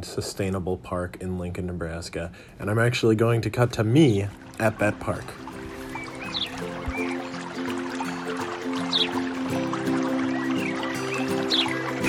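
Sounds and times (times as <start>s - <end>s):
speech: 0.0s - 5.5s
birds chirping: 4.0s - 12.0s
small waterfall splashing and pouring between two ponds: 4.0s - 12.0s.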